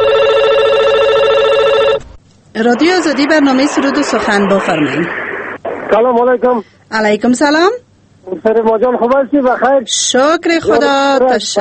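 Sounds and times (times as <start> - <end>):
electronic telephone ringing for a listener call-in: 0.0 - 2.0
speech: 2.6 - 5.2, 5.9 - 11.5.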